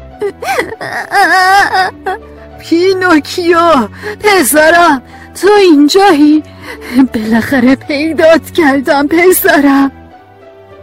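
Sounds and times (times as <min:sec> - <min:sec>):
child crying in wavering wails and sobs: 0:00.2 - 0:02.2
speech: 0:00.3 - 0:10.0.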